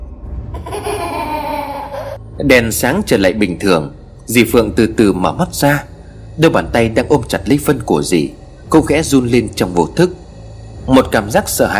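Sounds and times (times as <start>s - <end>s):
low rumbling background: 0.0s - 11.7s
child's high eerie laughter: 0.6s - 2.2s
speech: 2.4s - 10.2s, 10.9s - 11.7s.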